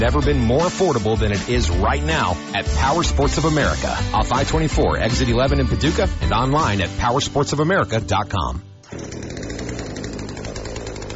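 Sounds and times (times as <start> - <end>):
speech: 0.0 - 9.1
chainsaw running for a plumbing job: 8.8 - 11.1.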